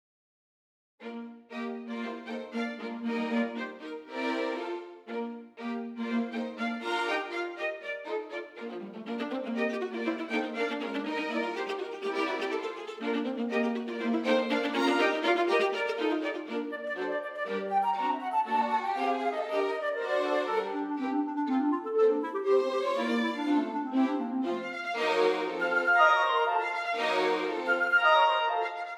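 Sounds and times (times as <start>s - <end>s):
close dry strings ensemble playing: 1.0s - 28.9s.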